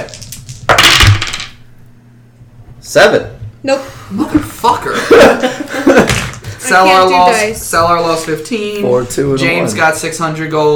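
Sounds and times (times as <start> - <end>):
speech: 0.0 - 0.3, 2.8 - 5.9, 6.6 - 10.7
two dice clattering across a hard tabletop: 0.0 - 1.6
laughter: 3.9 - 6.8.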